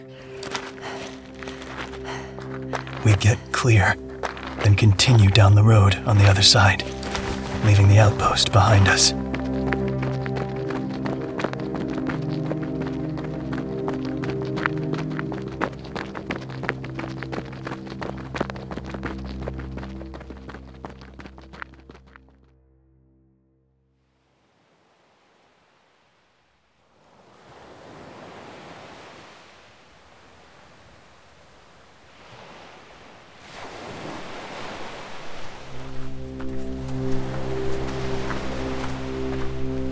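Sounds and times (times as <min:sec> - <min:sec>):
sustained musical tones: 0:00.0 - 0:16.2, 0:35.8 - 0:39.9
ocean waves breaking on the shore of a wide empty beach: 0:00.0 - 0:17.8, 0:27.0 - 0:39.9
speech: 0:03.0 - 0:04.0, 0:04.6 - 0:07.0, 0:07.6 - 0:09.2.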